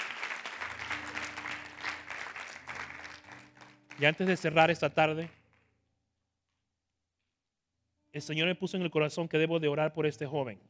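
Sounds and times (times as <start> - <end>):
church audience applauding during a service: 0.0 - 5.4
speech: 4.0 - 5.4, 8.2 - 10.6.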